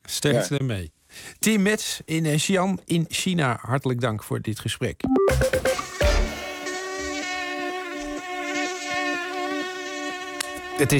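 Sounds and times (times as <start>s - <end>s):
speech: 0.2s - 5.9s, 10.8s - 10.9s
mosquito buzzing: 5.4s - 10.9s.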